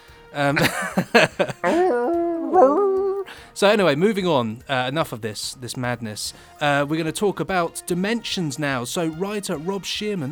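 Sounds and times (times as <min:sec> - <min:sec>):
speech: 0:00.3 - 0:02.2, 0:03.6 - 0:10.3
laughter: 0:00.4 - 0:03.3
voice imitating a dog with yelping whimpers: 0:01.6 - 0:03.4.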